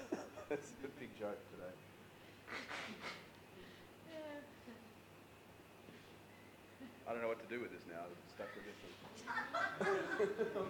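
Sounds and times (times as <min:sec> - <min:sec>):
speech: 0:00.5 - 0:04.9, 0:06.8 - 0:10.6
person blowing nose: 0:02.5 - 0:03.3
laughter: 0:09.3 - 0:10.6.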